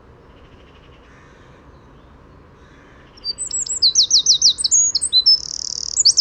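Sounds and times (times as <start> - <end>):
Eurasian wren Troglodytes troglodytes singing trills and buzzy rattle: 3.2 - 6.2.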